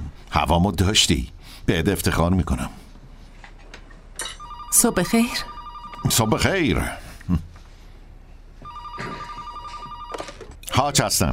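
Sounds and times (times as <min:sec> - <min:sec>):
speech: 0:00.4 - 0:02.8, 0:04.8 - 0:07.5, 0:10.8 - 0:11.3
telephone ringing with electronic tone: 0:04.4 - 0:06.8, 0:08.6 - 0:10.6.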